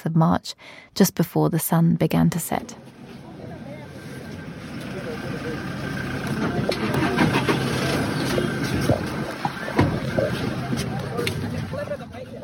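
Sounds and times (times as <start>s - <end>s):
speech: 0.0s - 3.0s
faint indistinct voices: 2.4s - 12.4s
vehicle convoy engines rumbling: 2.5s - 12.4s
clanks and knocks: 6.2s - 10.3s.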